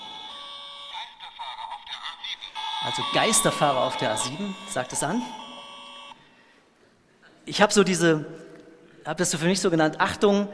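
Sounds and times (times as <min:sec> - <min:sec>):
toy police car steady high electronic beeping: 0:00.0 - 0:06.2
warbling crackly synthesized voice from a toy police car: 0:00.9 - 0:05.6
speech: 0:02.8 - 0:05.4, 0:07.5 - 0:08.4, 0:09.0 - 0:10.5.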